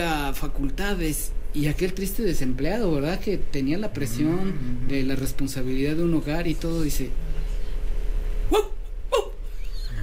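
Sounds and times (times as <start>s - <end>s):
speech: 0.0s - 7.3s, 8.5s - 8.7s
steady low hum: 0.0s - 10.0s
person imitating a dog with short sharp barks: 8.5s - 9.4s.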